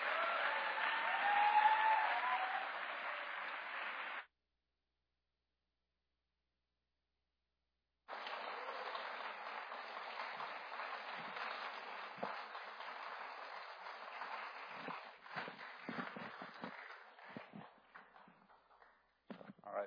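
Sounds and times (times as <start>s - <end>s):
congregation applauding after worship service: 0.0s - 4.3s, 8.1s - 19.1s.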